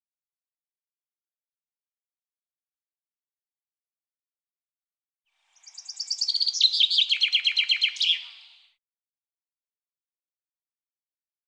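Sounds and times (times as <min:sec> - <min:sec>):
common chaffinch singing: 0:05.5 - 0:08.8.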